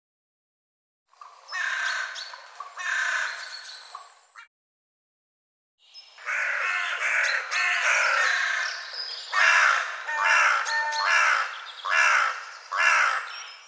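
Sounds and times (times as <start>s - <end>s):
bird giving rasping caws: 1.5s - 2.2s, 2.8s - 3.4s, 6.2s - 13.4s.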